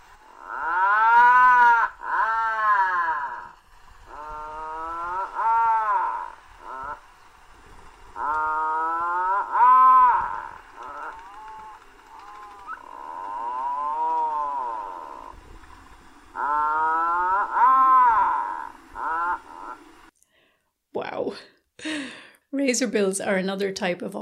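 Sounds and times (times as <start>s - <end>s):
Atlantic puffin giving drawn-out groaning calls: 0.0s - 7.1s, 8.1s - 15.6s, 16.3s - 20.1s
speech: 22.7s - 24.2s.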